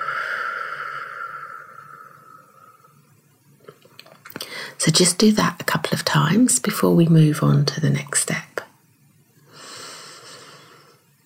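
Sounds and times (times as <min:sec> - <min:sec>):
deep breath in through the nose and out through the mouth: 0:00.0 - 0:03.1, 0:04.4 - 0:04.8, 0:09.4 - 0:11.2
speech: 0:04.8 - 0:08.4.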